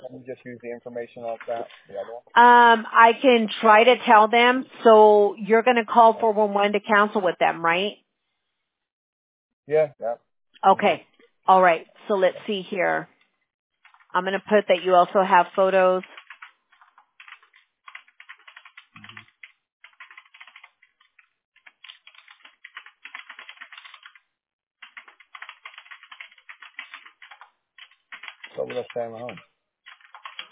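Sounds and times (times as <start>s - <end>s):
speech: 0.3s - 8.0s, 9.7s - 13.1s, 14.1s - 16.2s, 29.0s - 29.5s
typing on a computer keyboard: 1.4s - 1.6s, 13.8s - 14.1s, 16.0s - 24.2s, 24.8s - 30.5s
low voice or thump: 9.7s - 10.2s.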